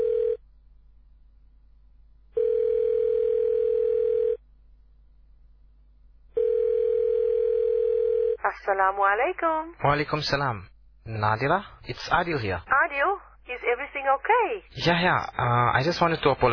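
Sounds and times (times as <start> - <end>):
phone ringback tone: 0.0 - 0.4, 2.4 - 4.4, 6.4 - 8.4
speech: 8.5 - 16.5.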